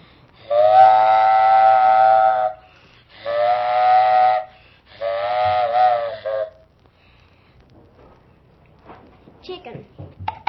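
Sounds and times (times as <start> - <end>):
freight train whistle blasts: 0.4 - 6.7.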